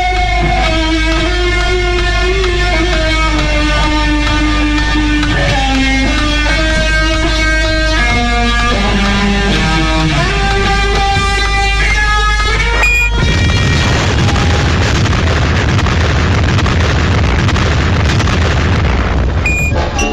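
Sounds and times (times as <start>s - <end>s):
loud deep continuous roaring rumble: 0.0s - 19.7s
steady buzzing tone: 12.8s - 13.4s, 19.4s - 20.1s
massive atomic bomb blast: 12.8s - 20.0s.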